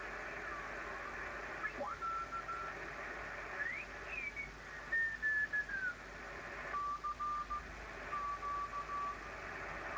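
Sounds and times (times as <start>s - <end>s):
radio receiver static hiss: 0.0s - 9.9s
Morse code beeps over radio static: 6.8s - 9.3s.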